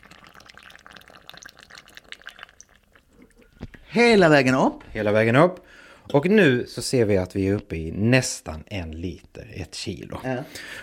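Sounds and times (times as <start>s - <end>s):
tap water pouring into a glass jar: 0.0s - 3.6s
speech: 3.9s - 10.8s.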